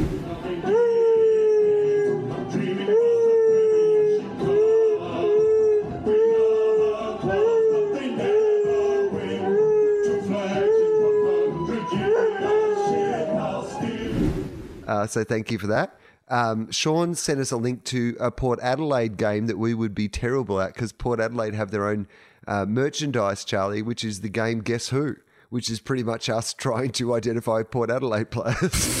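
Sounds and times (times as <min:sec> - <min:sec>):
dog howling along to music: 0:00.6 - 0:14.0
speech: 0:15.0 - 0:28.9.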